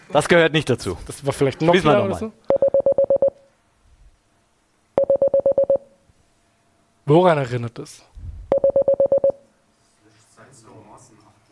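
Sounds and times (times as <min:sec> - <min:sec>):
speech: 0:00.1 - 0:02.6, 0:07.1 - 0:08.1
Morse code error signal of short rapid high-pitched beeps: 0:05.0 - 0:05.9, 0:08.5 - 0:09.4.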